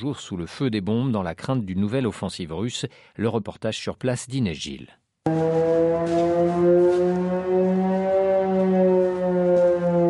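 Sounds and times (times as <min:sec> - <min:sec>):
speech: 0:00.0 - 0:07.3
air raid warning sirens wailing in a village near the Russian border: 0:05.3 - 0:10.0.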